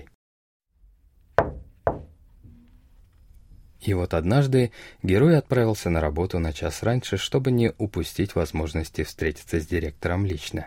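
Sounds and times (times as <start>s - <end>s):
knocking on the wooden door of a director's office: 1.4s - 2.2s
speech: 3.8s - 10.6s.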